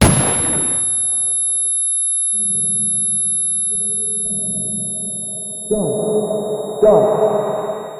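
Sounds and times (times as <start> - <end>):
gunshot: 0.0 - 1.4
tinnitus ringing: 0.0 - 7.9.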